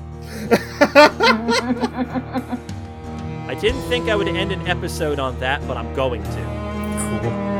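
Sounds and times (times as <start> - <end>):
man imitating a slapstick comedian's goofy cartoonish chuckle: 0.2 - 2.6
speech: 0.5 - 2.4, 3.6 - 7.5.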